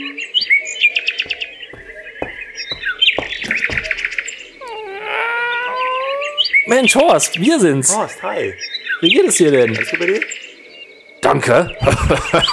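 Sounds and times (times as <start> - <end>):
birds chirping: 0.0 - 12.5
dog howling: 3.5 - 6.7
speech: 6.7 - 10.4, 11.3 - 12.5
laughter: 11.4 - 12.5.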